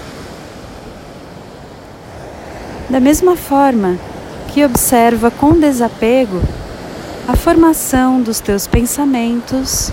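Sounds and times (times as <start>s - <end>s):
ocean waves washing onto the shore and drawing back into the sea: 0.0s - 9.9s
speech: 2.9s - 6.6s, 7.3s - 9.9s.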